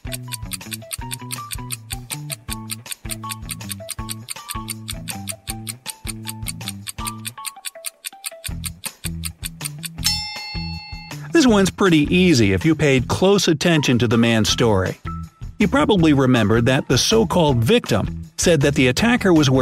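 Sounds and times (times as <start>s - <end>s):
clock ticking: 0.0s - 10.1s
low bouncy musical backing: 0.0s - 19.6s
speech: 11.4s - 15.0s, 15.6s - 19.6s.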